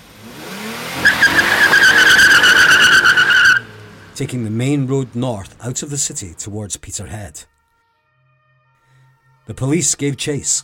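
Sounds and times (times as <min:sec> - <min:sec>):
stolen car engine revving at a filling station: 0:00.0 - 0:05.6
car tires screeching in a skid: 0:00.1 - 0:05.8
speech: 0:04.2 - 0:07.6, 0:09.5 - 0:10.6.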